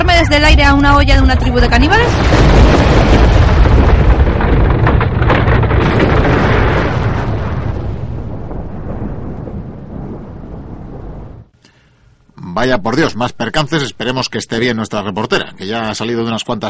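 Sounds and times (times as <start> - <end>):
volcanic eruption explosion roar: 0.0 - 11.6
speech: 0.2 - 3.1, 12.6 - 16.6.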